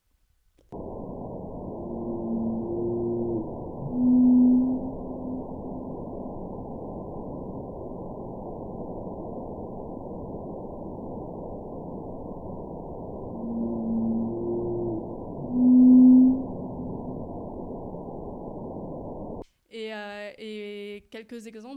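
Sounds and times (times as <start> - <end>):
whale song from a whale population off Oman in the northwestern Indian Ocean: 0.9 - 6.0, 13.0 - 17.8
speech: 21.2 - 21.7.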